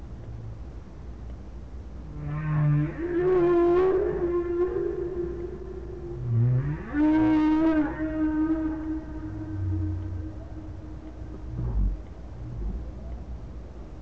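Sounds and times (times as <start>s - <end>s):
whale moans with rich harmonics: 2.1s - 13.3s.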